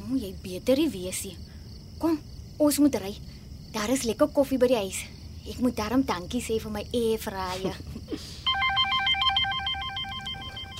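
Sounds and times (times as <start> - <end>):
speech: 0.1 - 8.4
electronic telephone ringing with warbling tones: 8.5 - 10.7.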